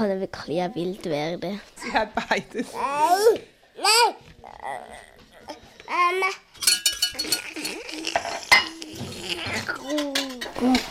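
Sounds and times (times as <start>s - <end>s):
speech: 0.0s - 5.1s
pan and metal utensils including a whisk clinking, scraping and clattering while cooking: 6.6s - 10.9s.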